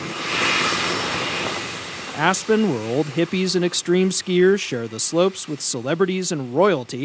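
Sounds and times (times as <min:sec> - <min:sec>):
private jet aircraft engine roar: 0:00.0 - 0:04.4
speech: 0:02.2 - 0:07.0.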